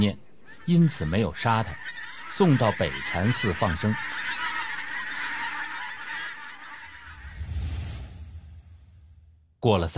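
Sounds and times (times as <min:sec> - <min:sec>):
speech: 0:00.0 - 0:04.4, 0:09.6 - 0:09.9
goose honking: 0:00.5 - 0:07.2.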